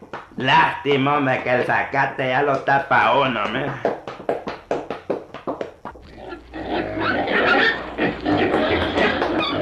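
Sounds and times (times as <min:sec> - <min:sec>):
speech: 0:00.4 - 0:04.0
pigs grunting: 0:06.0 - 0:09.6.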